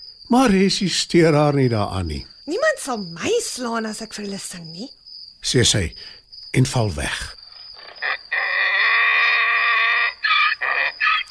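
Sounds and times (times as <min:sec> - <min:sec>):
speech: 0:00.3 - 0:07.4
donkey braying: 0:07.8 - 0:11.2.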